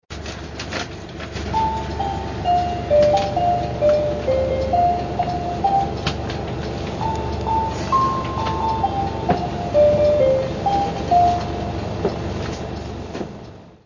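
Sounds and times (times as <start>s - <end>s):
JR West bus chime: 1.5s - 12.9s.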